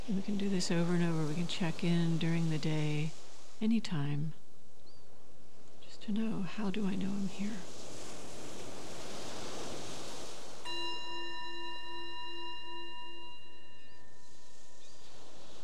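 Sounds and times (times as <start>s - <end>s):
ocean-like noise: 0.0s - 15.6s
speech: 0.1s - 4.4s, 6.1s - 7.8s
meditation bell ringing: 10.6s - 15.6s.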